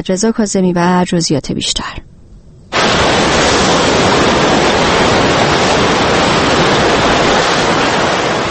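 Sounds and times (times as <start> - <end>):
speech: 0.0 - 2.1
rushing tsunami floodwater after an earthquake sweeping houses and cars along: 2.7 - 8.4.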